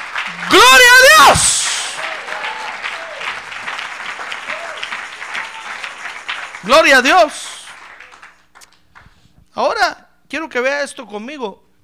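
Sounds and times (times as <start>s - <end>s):
roomful of people applauding: 0.0s - 9.1s
speech: 0.3s - 1.6s, 6.7s - 7.5s, 9.6s - 11.6s.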